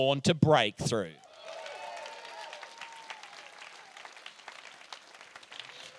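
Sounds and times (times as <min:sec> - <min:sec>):
speech: 0:00.0 - 0:01.2
crowd clapping: 0:01.2 - 0:05.9
faint whooping cheers: 0:01.2 - 0:05.9.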